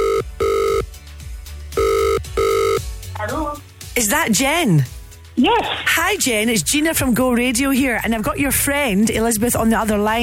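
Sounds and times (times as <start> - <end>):
telephone ringing after a number is dialled: 0.0 - 0.9, 1.8 - 2.9
speech: 4.0 - 10.2.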